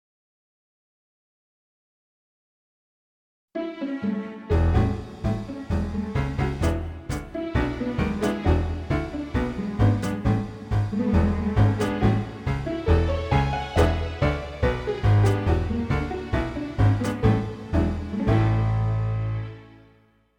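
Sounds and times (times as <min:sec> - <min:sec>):
pizzicato strings: 0:03.6 - 0:19.8.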